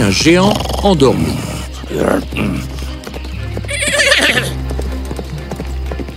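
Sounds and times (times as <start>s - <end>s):
speech: 0.0s - 2.7s
horse hoofbeats clip-clopping through a forest: 0.0s - 6.1s
horse snorting and neighing while galloping through a forest: 0.4s - 3.0s, 3.6s - 4.7s.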